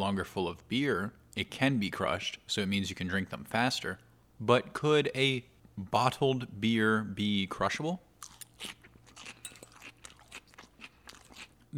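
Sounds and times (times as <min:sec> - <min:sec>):
speech: 0:00.0 - 0:08.8
crunchy chewing of salad while eating: 0:08.2 - 0:11.7.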